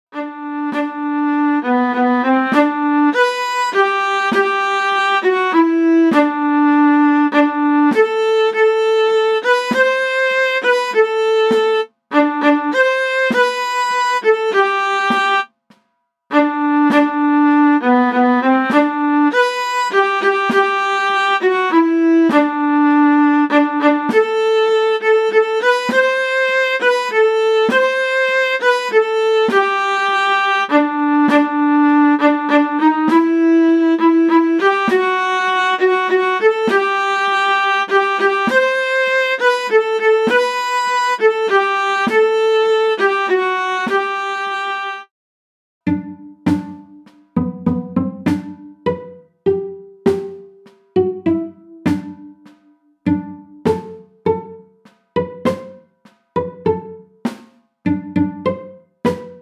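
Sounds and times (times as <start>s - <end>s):
single-voice MIDI melody: 0.1s - 15.5s, 16.3s - 45.1s, 45.8s - 57.3s, 57.9s - 59.3s.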